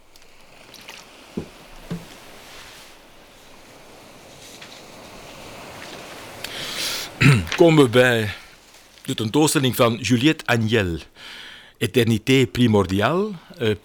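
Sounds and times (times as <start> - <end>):
faint liquid sounds: 0.0 - 10.0
steady low hiss: 0.0 - 13.8
quick soft sips of water: 0.1 - 3.1, 4.9 - 13.8
speech: 7.3 - 8.4, 9.1 - 13.8.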